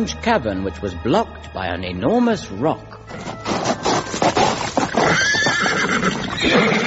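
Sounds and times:
speech: 0.0s - 3.4s
hooves clattering: 3.1s - 6.8s
horse snorting: 3.2s - 6.8s
horse neighing: 4.5s - 6.8s.

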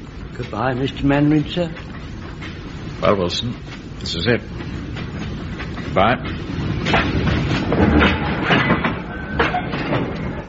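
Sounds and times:
train wheels clickety-clack on rails: 0.0s - 10.4s
speech: 0.4s - 2.0s, 3.0s - 4.8s, 5.9s - 8.7s.

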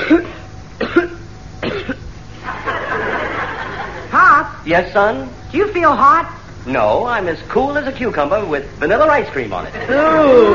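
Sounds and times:
person clearing throat: 0.0s - 2.1s
person coughing: 0.0s - 2.1s
laughter: 2.4s - 4.2s, 9.7s - 10.5s
speech: 4.7s - 10.5s.

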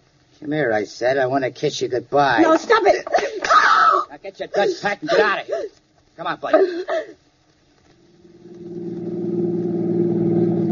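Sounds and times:
speech: 0.4s - 3.3s, 4.2s - 7.2s
car engine humming as vehicle picks up speed: 8.0s - 10.7s.

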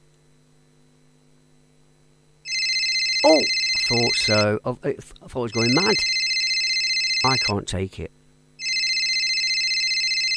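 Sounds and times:
steady low electrical hum: 0.0s - 10.3s
loud bright electronic telephone ring: 2.4s - 4.5s, 5.5s - 7.6s, 8.6s - 10.3s
speech: 3.2s - 6.2s, 7.2s - 8.2s.

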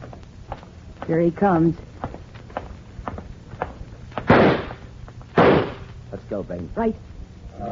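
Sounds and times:
speech: 1.1s - 1.9s, 6.5s - 7.1s
gunshot: 4.2s - 4.8s, 5.4s - 5.9s.

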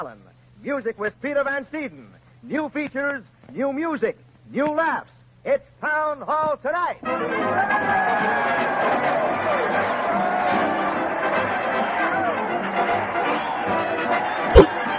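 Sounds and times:
speech: 0.0s - 10.7s
large crowd cheering at a parade to the old town hall: 7.1s - 14.9s
sharp thump: 14.5s - 14.7s.

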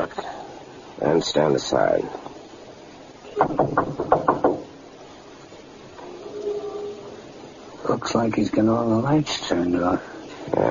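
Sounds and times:
speech: 0.0s - 0.2s, 1.0s - 2.3s, 3.4s - 3.8s, 8.0s - 10.6s
faint low hum: 0.0s - 10.6s
police officers knocking on the front door of a house: 3.4s - 4.8s.

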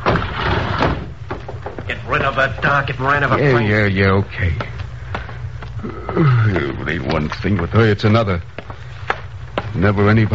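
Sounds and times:
door being opened: 0.0s - 1.9s
speech: 2.1s - 4.8s, 5.8s - 8.8s, 9.7s - 10.3s.

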